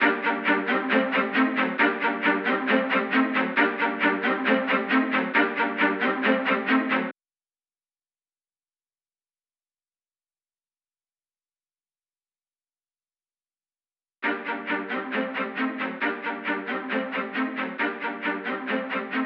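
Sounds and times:
low string loop in G minor for trap music: 0.0 - 7.1, 14.2 - 19.2.

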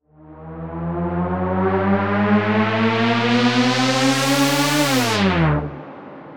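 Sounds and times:
dubstep terror riser effect in D: 1.9 - 5.8.

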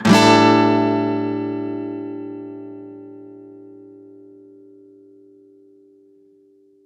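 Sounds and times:
guitar one-shots in D minor: 0.0 - 3.4.

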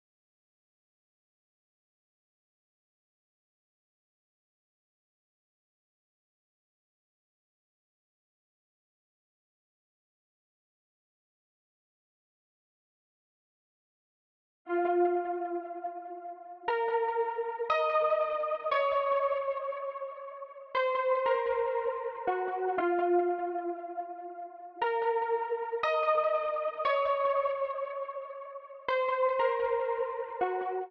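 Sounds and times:
hip hop pluck melody loop in A sharp minor: 14.7 - 30.8.

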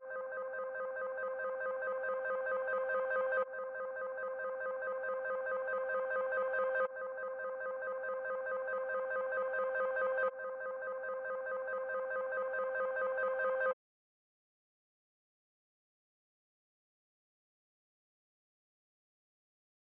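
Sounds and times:
140 BPM C minor trap melody arpeggio loop: 0.4 - 13.7.

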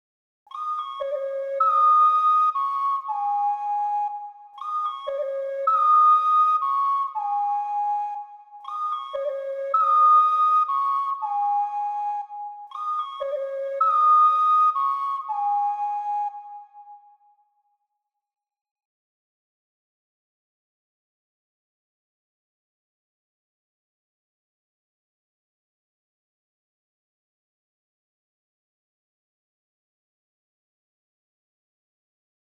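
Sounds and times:
ocarina melody loop in C# minor at 118 BPM for trap: 0.5 - 16.9.

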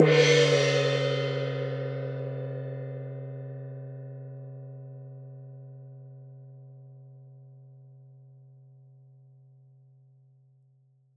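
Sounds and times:
large gong: 0.0 - 4.6.

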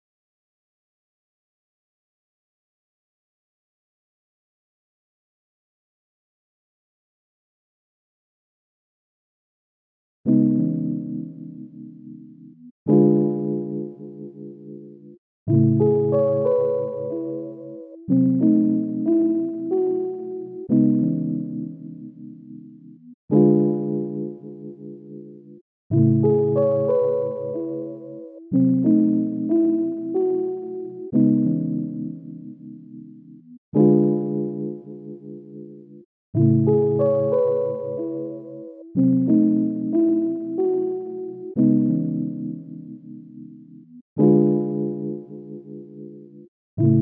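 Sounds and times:
C# minor piano loop: 10.3 - 46.9.

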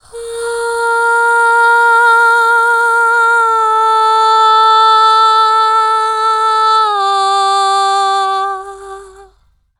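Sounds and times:
lead vocals in C minor at 70 BPM: 0.0 - 9.6.

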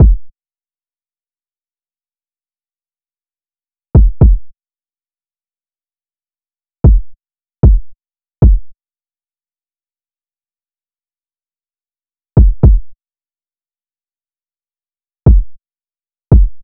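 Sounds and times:
kick drum loop: 0.0 - 0.3, 4.0 - 4.5, 6.8 - 8.7, 12.4 - 12.9, 15.3 - 15.6, 16.3 - 16.6.

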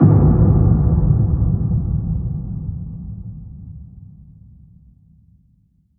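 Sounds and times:
deep psytrance impact effect: 0.0 - 4.2.

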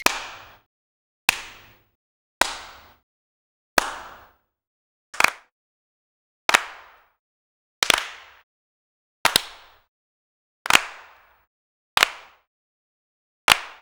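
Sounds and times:
single cartoon hand claps: 0.0 - 0.7, 1.3 - 3.0, 3.8 - 4.4, 5.2 - 5.5, 6.5 - 7.2, 7.8 - 8.5, 9.3 - 9.9, 10.7 - 11.4, 12.0 - 12.5, 13.5 - 13.8.

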